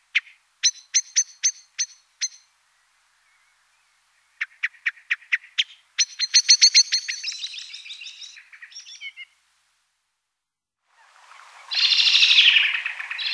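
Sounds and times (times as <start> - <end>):
common blackbird fast squeaky high twittering: 0.2 - 2.5, 5.4 - 9.3, 11.7 - 13.3.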